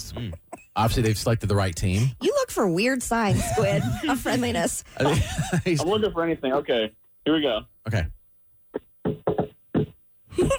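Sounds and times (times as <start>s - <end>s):
laughter: 0.1s - 2.1s, 3.2s - 6.1s, 10.4s - 10.5s
speech: 0.1s - 8.2s
knocking on a front door: 9.1s - 10.0s.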